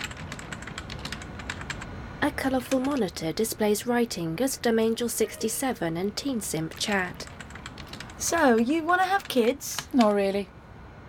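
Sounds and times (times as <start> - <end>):
typing on a computer keyboard: 0.0 - 1.9, 2.6 - 3.1, 6.6 - 10.2
speech: 2.2 - 7.4, 8.2 - 10.6.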